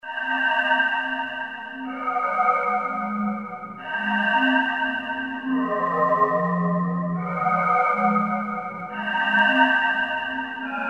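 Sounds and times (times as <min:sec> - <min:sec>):
ambient synth on Roland JV-2080: 0:00.1 - 0:10.8.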